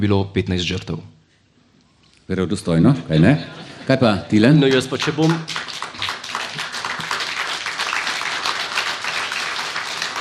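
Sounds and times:
speech: 0.0 - 1.2, 2.3 - 5.7
audience applause: 4.6 - 10.1.

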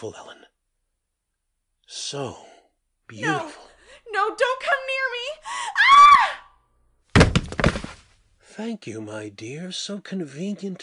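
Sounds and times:
speech: 0.0 - 0.4, 1.9 - 2.5, 3.1 - 6.4, 8.6 - 10.8
woman screaming: 5.5 - 6.6
heavy thumping and crashing: 7.1 - 8.0.

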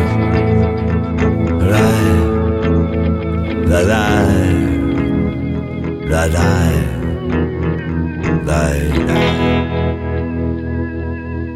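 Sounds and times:
heavily effected distorted guitar: 0.0 - 11.5
recorded rock cover of an Italian song: 0.0 - 11.5.

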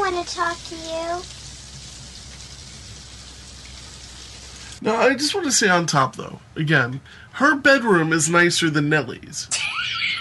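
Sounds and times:
steady rain pattering on a surface: 0.0 - 4.8
speech: 0.2 - 1.4, 4.8 - 10.0.

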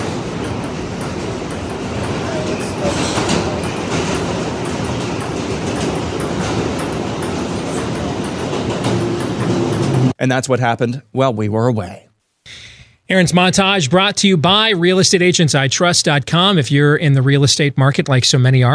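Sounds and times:
subway train rumbling in motion: 0.0 - 10.2
subway train wheels clattering on the track: 0.0 - 10.2
speech: 10.2 - 18.7.

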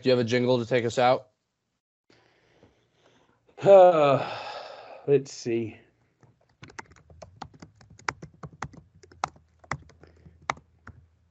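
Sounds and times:
speech: 0.0 - 1.3, 3.6 - 4.5, 5.1 - 5.8
typing on a small keyboard: 6.2 - 11.0.

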